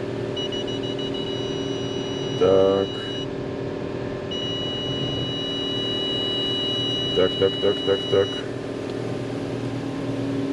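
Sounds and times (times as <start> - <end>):
constant low mechanical hum: 0.0 - 10.5
car's high electronic beeping: 0.3 - 3.4, 4.3 - 8.6
speech: 2.4 - 3.0, 7.2 - 8.4.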